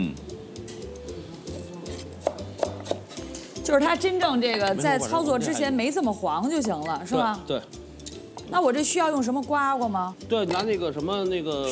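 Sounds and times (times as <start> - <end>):
knife chopping pickled chili peppers on a board: 1.9 - 3.2
speech: 3.7 - 7.8, 8.5 - 11.7.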